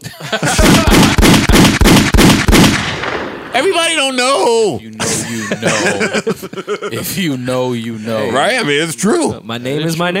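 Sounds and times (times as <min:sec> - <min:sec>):
speech: 0:00.0 - 0:00.8, 0:04.1 - 0:10.1
laughter: 0:00.0 - 0:01.2, 0:05.0 - 0:08.7
rapid volley of gunshot sound effects: 0:00.4 - 0:03.7.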